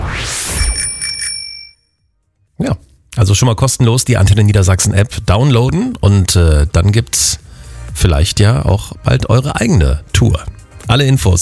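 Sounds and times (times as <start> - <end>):
bicycle bell ringing: 0.6 - 1.9
speech: 2.6 - 7.4, 8.0 - 11.4.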